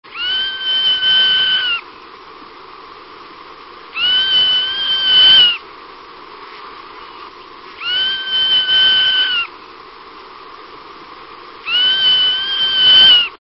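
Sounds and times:
zone-tailed hawk calling: 0:00.1 - 0:01.9, 0:03.9 - 0:05.6, 0:07.0 - 0:09.7, 0:11.6 - 0:13.4.

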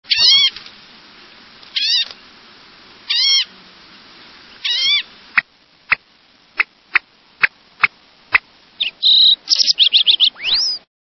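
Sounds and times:
green-tailed towhee calling: 0:00.1 - 0:00.6, 0:01.7 - 0:02.2, 0:03.0 - 0:03.6, 0:04.5 - 0:06.0, 0:06.6 - 0:10.9.

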